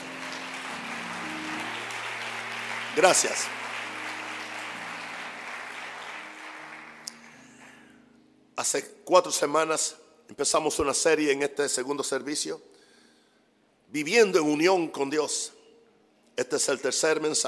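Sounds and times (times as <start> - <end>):
congregation applauding: 0.0 - 7.9
speech: 3.0 - 3.6, 8.6 - 12.7, 13.9 - 15.6, 16.4 - 17.4.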